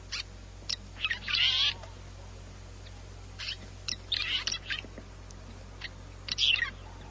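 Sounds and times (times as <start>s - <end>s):
low steady hum: 0.0s - 7.0s
red-rumped swallow calling: 0.1s - 1.9s, 2.8s - 4.9s, 5.8s - 7.0s.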